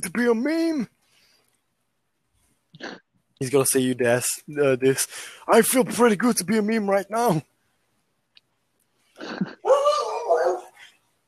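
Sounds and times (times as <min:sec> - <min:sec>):
speech: 0:00.0 - 0:01.0, 0:02.8 - 0:07.5
dog whining with a drawn-out wavering bark: 0:09.2 - 0:10.8
dog barking: 0:09.6 - 0:10.8.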